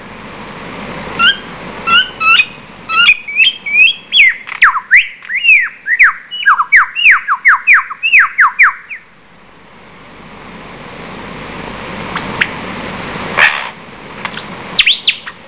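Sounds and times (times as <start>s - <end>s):
lyrebird song of ringing whistles: 1.2s - 9.0s, 14.4s - 15.4s.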